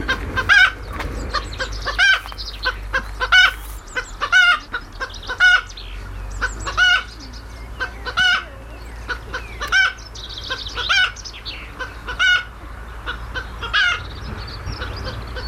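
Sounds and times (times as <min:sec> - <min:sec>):
chicken clucking: 0:00.0 - 0:15.4
low hum: 0:00.0 - 0:15.4.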